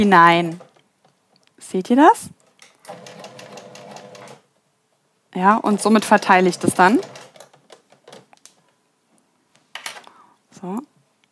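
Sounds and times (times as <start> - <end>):
speech: 0.0 - 0.6, 1.6 - 3.2, 5.3 - 7.2, 10.6 - 10.9
sewing machine stitching gathered fabric: 2.9 - 4.4, 5.8 - 7.5.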